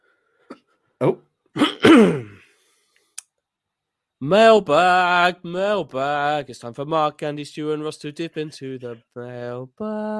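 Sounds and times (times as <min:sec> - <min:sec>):
man clearing throat while warming up his voice: 0:00.5 - 0:02.5
speech: 0:01.0 - 0:01.2, 0:04.2 - 0:10.1
man making a longer voiced sound: 0:04.2 - 0:10.1.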